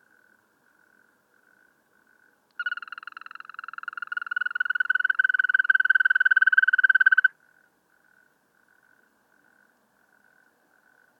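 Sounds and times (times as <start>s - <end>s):
European green toad purring trill: 0.8s - 9.6s.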